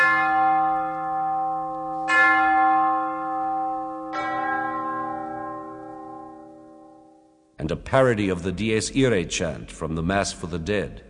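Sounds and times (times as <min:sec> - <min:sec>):
deep solemn funeral bell tolling: 0:00.0 - 0:07.6
speech: 0:07.6 - 0:11.0.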